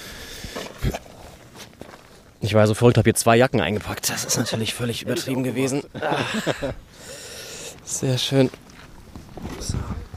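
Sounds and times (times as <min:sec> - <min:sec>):
footsteps of people walking outdoors toward a stadium: 0:00.0 - 0:10.1
speech: 0:02.4 - 0:07.2, 0:07.9 - 0:08.6
laughter: 0:04.2 - 0:06.9.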